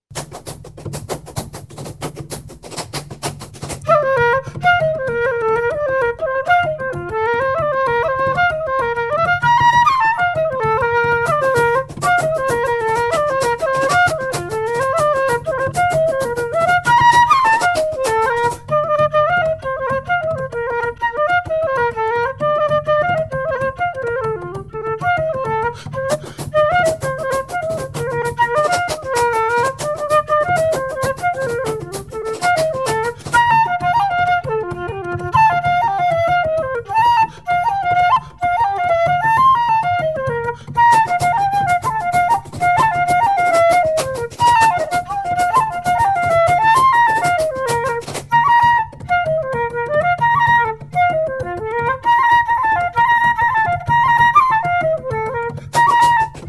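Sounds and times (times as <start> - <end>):
F flute: 0.0 - 56.4
bodhran: 0.0 - 56.4
fast hard shoe dancing: 0.1 - 3.9, 11.2 - 18.8, 25.9 - 33.8, 40.7 - 48.5, 55.6 - 56.4.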